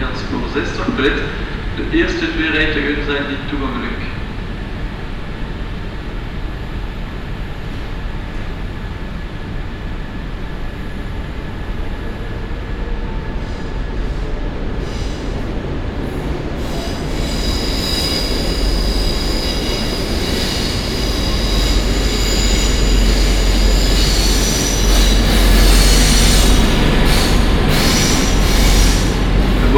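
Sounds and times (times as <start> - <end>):
train pulling in at a station platform: 0.0 - 29.7
speech: 0.6 - 4.2
high metallic train wheel squeal: 16.7 - 29.7.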